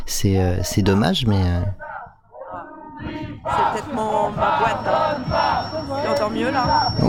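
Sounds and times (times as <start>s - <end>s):
speech: 0.1s - 1.8s, 3.0s - 7.0s
muffled crowd chanting at a march: 1.8s - 7.0s.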